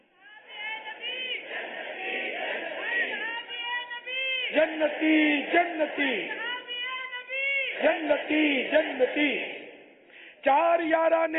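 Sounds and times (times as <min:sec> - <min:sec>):
large crowd chanting religious slogans in unison: 0:00.3 - 0:11.3
speech: 0:04.5 - 0:06.4, 0:07.8 - 0:09.6, 0:10.4 - 0:11.3.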